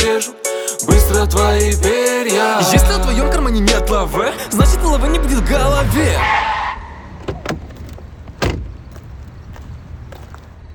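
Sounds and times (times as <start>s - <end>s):
speech: 1.2s - 6.5s
low rumble: 2.8s - 9.3s
car door slamming shut: 7.1s - 9.0s.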